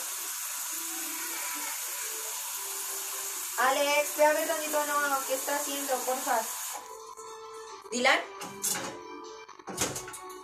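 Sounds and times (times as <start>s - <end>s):
water running from a tap into a pot or sink: 0.0s - 7.2s
speech: 3.6s - 7.0s, 7.9s - 9.0s.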